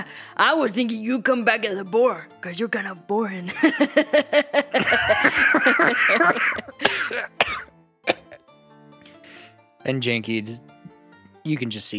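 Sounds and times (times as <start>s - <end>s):
speech: 0.0s - 7.7s, 9.8s - 10.7s, 11.4s - 11.9s
laughter: 3.5s - 7.4s
hard harsh coughing fit: 4.9s - 8.4s.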